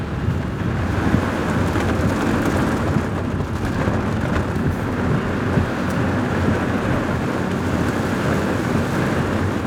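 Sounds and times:
heavy downpour in a thunderstorm: 0.0 - 9.6
low rumble of storm and wind: 0.0 - 9.6.

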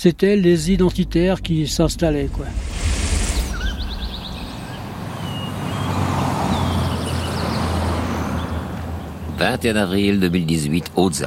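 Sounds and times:
speech: 0.0 - 2.7, 9.4 - 11.2
column of cars led by white Toyotas driving up a narrow road in the Hautes-Alpes: 0.0 - 9.6
birds chirping faintly: 2.6 - 10.5.

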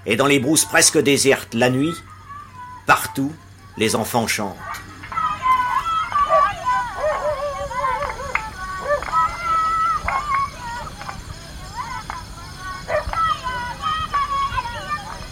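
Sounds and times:
speech: 0.0 - 2.2, 2.9 - 4.8
steady high-pitched insect drone: 0.0 - 15.3
dogs barking, yelping and howling at night: 4.6 - 15.3.

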